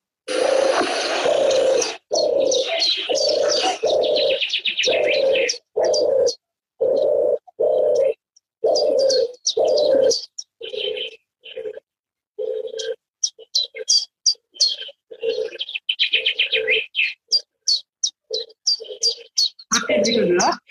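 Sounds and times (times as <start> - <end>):
chiffchaff chirping sharp high notes: 0.3 - 4.7
European turtle dove purring call: 0.3 - 20.6.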